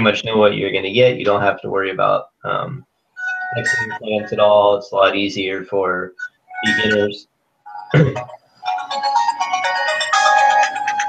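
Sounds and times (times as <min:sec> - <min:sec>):
speech: 0:00.0 - 0:02.9, 0:03.5 - 0:07.3, 0:07.9 - 0:08.4
melodic electronic phone ringtone: 0:03.2 - 0:04.4, 0:06.2 - 0:07.1, 0:07.7 - 0:11.0.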